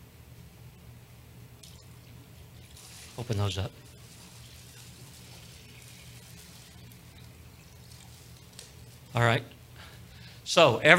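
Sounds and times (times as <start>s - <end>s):
water pouring from one container into another: 1.6s - 9.6s
speech: 3.2s - 3.8s, 9.2s - 9.6s, 10.6s - 10.9s.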